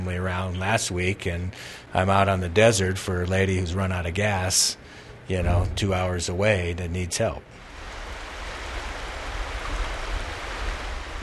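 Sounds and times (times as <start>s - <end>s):
speech: 0.1s - 7.6s
flowing river water rushing: 7.6s - 11.2s.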